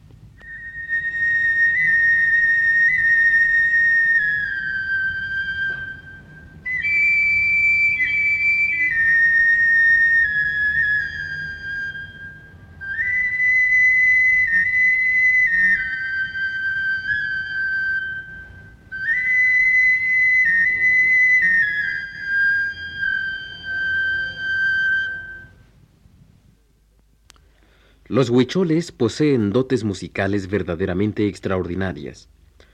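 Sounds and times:
clay flute with four finger holes playing a breathy melody: 0.4 - 25.7
speech: 28.1 - 32.4.

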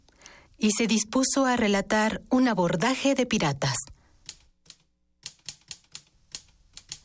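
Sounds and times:
speech: 0.6 - 3.9
typewriter keystrokes: 4.2 - 7.0.

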